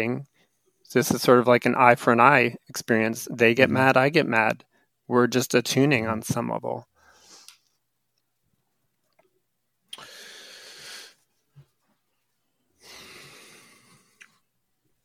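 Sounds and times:
speech: 0:00.0 - 0:00.3, 0:00.9 - 0:06.9
person taking a deep breath: 0:07.0 - 0:07.6, 0:10.0 - 0:11.3, 0:12.8 - 0:14.4
soft mouth noises: 0:09.0 - 0:10.1, 0:13.8 - 0:14.5.

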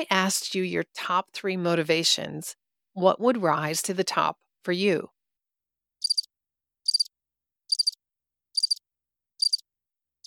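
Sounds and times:
speech: 0:00.0 - 0:05.2
cricket chirping: 0:06.0 - 0:06.3, 0:06.9 - 0:07.1, 0:07.7 - 0:08.0, 0:08.6 - 0:08.8, 0:09.4 - 0:09.6.

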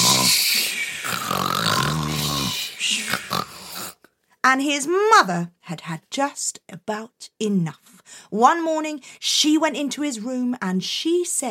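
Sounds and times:
several voices imitating snoring: 0:00.0 - 0:04.0
speech: 0:04.5 - 0:11.5.

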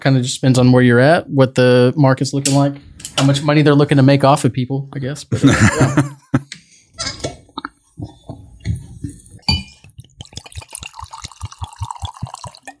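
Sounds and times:
speech: 0:00.0 - 0:06.6
laughter: 0:05.3 - 0:06.5
bourbon whiskey being poured into a glass: 0:08.6 - 0:12.7
light glass clinks: 0:09.4 - 0:09.8.

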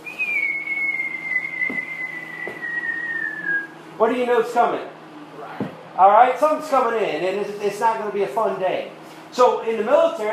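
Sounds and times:
high sustained whistle of an incoming shell in battle: 0:00.0 - 0:03.8
speech: 0:01.7 - 0:01.9, 0:04.0 - 0:05.0, 0:05.6 - 0:10.3.

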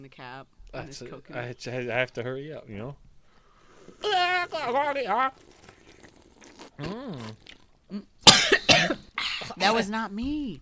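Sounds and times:
speech: 0:00.0 - 0:03.0, 0:03.9 - 0:05.5, 0:06.8 - 0:10.6
brief voiced groan: 0:04.0 - 0:05.0, 0:06.8 - 0:07.4
loud harsh rasping coughs: 0:08.2 - 0:09.6.

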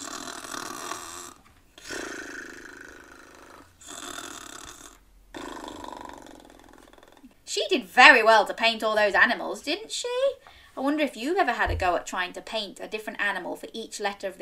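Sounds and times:
human voice imitating snoring: 0:00.0 - 0:07.4
speech: 0:07.6 - 0:14.4.

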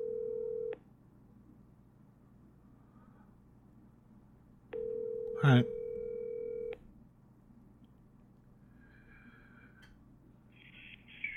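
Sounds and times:
telephone line tone: 0:00.0 - 0:00.8, 0:04.8 - 0:06.8
low hum: 0:00.0 - 0:11.3
speech: 0:05.4 - 0:05.8.

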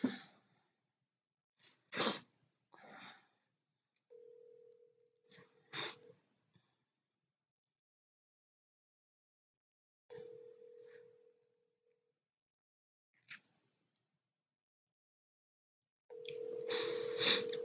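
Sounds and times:
phone ringing tone: 0:10.1 - 0:11.3, 0:16.1 - 0:17.6.

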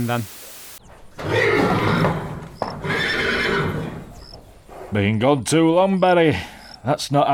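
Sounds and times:
speech: 0:00.0 - 0:00.4, 0:04.9 - 0:07.3
horse hooves clattering: 0:00.8 - 0:06.3
horse whinnying: 0:01.2 - 0:04.3.

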